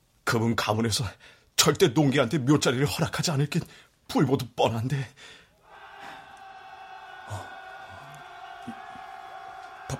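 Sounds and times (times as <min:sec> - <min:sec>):
speech: 0:00.3 - 0:05.4
crowd of militia shouting outside: 0:05.6 - 0:09.9.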